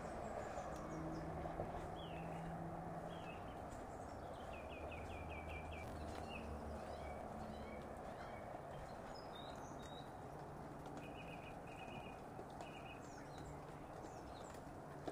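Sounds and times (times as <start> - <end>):
birds chirping: 0.0 - 15.1
low outdoor rumble: 0.0 - 15.1
squelchy footsteps walking on a soft path and grass: 1.2 - 15.1.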